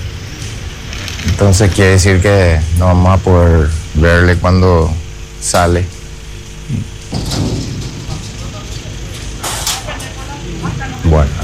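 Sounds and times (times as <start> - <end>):
low rumble of vehicles: 0.0 - 11.4
speech: 1.4 - 6.0, 6.7 - 7.6, 11.1 - 11.4
large parking-lot gate rolling shut: 6.8 - 10.2
clattering bursts: 6.9 - 10.2.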